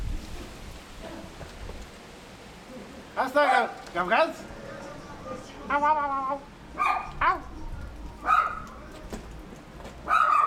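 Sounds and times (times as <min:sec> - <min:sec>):
noisy outdoor background in a village: 0:00.0 - 0:10.4
speech: 0:03.2 - 0:04.5, 0:05.3 - 0:07.4
dog barking and yipping: 0:03.4 - 0:03.8, 0:06.8 - 0:07.5, 0:08.2 - 0:08.7, 0:10.0 - 0:10.4.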